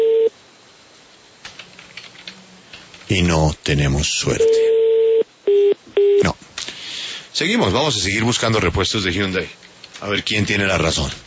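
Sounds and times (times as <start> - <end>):
loud steady telephone tone: 0.0 - 0.3, 4.4 - 6.3
speech: 3.1 - 4.7, 7.4 - 11.2.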